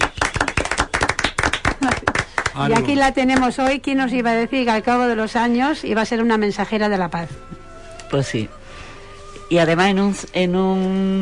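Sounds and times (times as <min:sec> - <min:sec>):
audience clapping: 0:00.0 - 0:03.8
speech: 0:02.6 - 0:08.6, 0:09.5 - 0:11.2.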